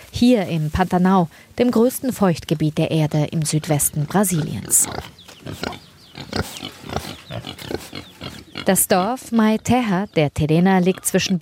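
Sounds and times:
speech: 0.2s - 6.6s, 8.7s - 11.3s
pigs grunting and snorting: 3.6s - 9.9s.

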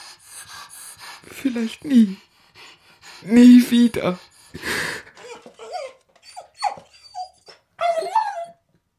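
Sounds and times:
speech: 1.2s - 2.3s, 3.2s - 4.7s
old dying dog whimpering and whining: 5.2s - 8.7s.

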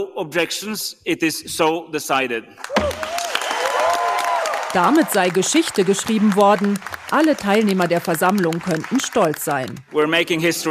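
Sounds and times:
speech: 0.0s - 3.1s, 4.7s - 10.7s
crowd applause at an environment assembly: 2.6s - 9.8s.

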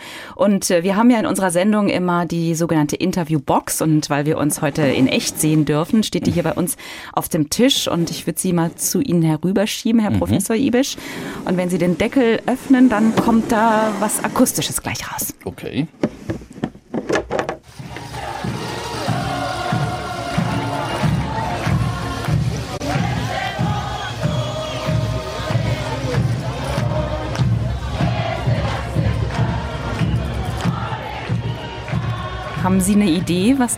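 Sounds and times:
speech: 0.4s - 16.4s, 32.6s - 33.7s
lively Bolivian carnival music: 17.6s - 33.7s
noise of a festive crowd: 17.7s - 33.7s
steady pounding drum beat: 17.7s - 33.7s.

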